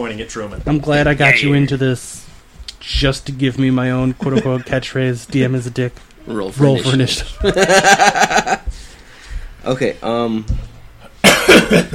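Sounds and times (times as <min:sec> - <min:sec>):
speech: 0:00.0 - 0:08.5, 0:09.6 - 0:10.7, 0:11.5 - 0:11.9
laughter: 0:04.1 - 0:04.9, 0:07.2 - 0:08.8, 0:11.2 - 0:11.9
man coughing harshly: 0:11.1 - 0:11.9.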